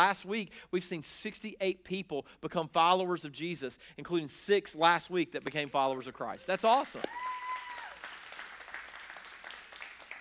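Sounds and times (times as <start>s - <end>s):
speech: 0.0s - 7.4s
roomful of people applauding: 5.8s - 10.1s.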